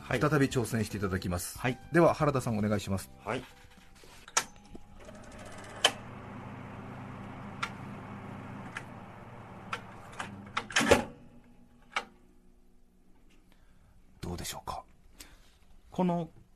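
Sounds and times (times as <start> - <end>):
speech: 0.1 - 3.7, 16.0 - 16.4
National 20 cm electric shutter-type ventilation fan whirring: 4.4 - 13.2.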